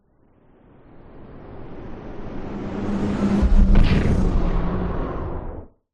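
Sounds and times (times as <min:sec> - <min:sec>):
science fiction fast pass by whoosh: 0:02.8 - 0:05.4.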